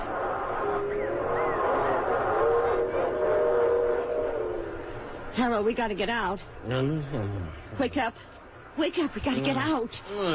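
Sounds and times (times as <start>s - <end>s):
train rumbling: 0.0s - 7.2s
train whistle: 0.6s - 5.3s
speech: 5.4s - 10.3s.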